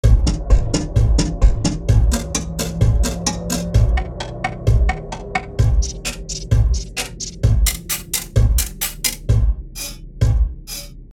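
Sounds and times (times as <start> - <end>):
percussion effect: 0.0 - 11.0.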